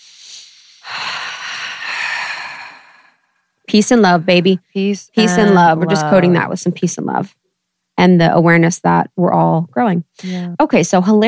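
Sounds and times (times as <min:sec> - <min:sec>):
deep breath: 0:00.0 - 0:03.5
speech: 0:03.7 - 0:07.4, 0:08.0 - 0:11.2.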